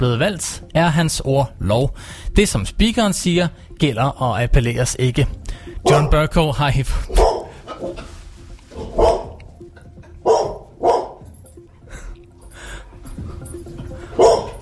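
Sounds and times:
speech: 0.0s - 7.2s
dog barking: 5.8s - 6.2s, 7.1s - 7.9s, 8.8s - 9.4s, 10.2s - 11.2s, 14.2s - 14.6s.

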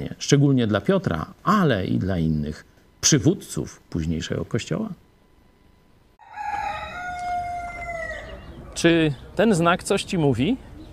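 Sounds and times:
speech: 0.1s - 5.0s, 8.8s - 10.7s
rooster crowing: 6.2s - 8.8s.

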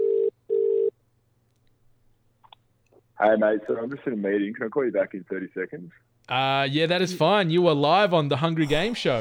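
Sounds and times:
telephone ringback tone: 0.0s - 0.9s
speech: 3.2s - 9.1s.

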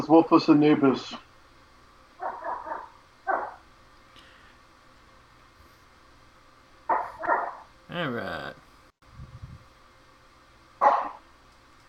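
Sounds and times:
speech: 0.1s - 1.2s
puppy barking: 2.2s - 3.6s, 6.9s - 7.7s, 10.8s - 11.2s.

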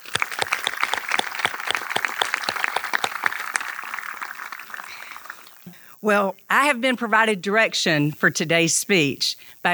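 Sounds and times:
crowd applauding: 0.0s - 5.8s
speech: 6.0s - 9.7s.

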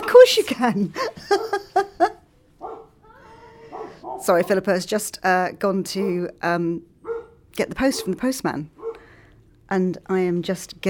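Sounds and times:
speech: 0.2s - 1.7s, 4.2s - 6.9s, 7.6s - 8.8s, 9.7s - 10.8s
laughter: 0.9s - 2.3s
dog barking: 2.6s - 3.0s, 3.7s - 4.5s, 7.0s - 8.2s, 8.8s - 9.1s.

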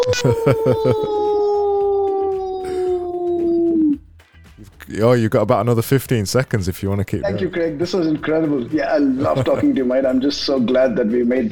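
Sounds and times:
laughter: 0.0s - 3.7s, 7.2s - 10.8s
person howling like a wolf: 0.0s - 4.0s
speech: 0.1s - 1.4s, 4.9s - 11.5s.

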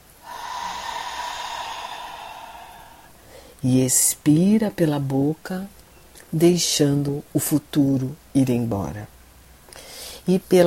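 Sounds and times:
slow deep inhale through the nose during a guided breathing exercise: 0.2s - 3.6s, 9.8s - 10.2s
speech: 3.6s - 9.2s, 10.3s - 10.6s.

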